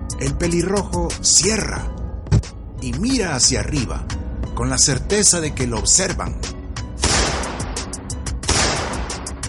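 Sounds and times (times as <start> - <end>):
speech: 0.2 - 2.0, 2.8 - 6.6
pistol shots fired into the air: 7.0 - 9.4.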